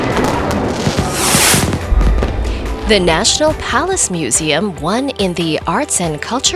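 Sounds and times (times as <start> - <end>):
fireworks exploding at a summer festival: 0.0 - 4.8
speech: 2.9 - 6.5.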